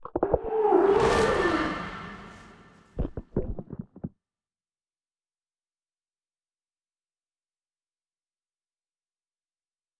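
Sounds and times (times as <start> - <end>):
reanimated aqua dragon attack sound: 0.5 - 2.9.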